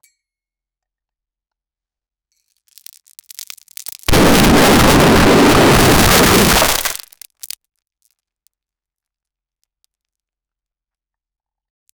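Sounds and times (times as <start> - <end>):
bullets in war on a battlefield: 4.1 - 7.0.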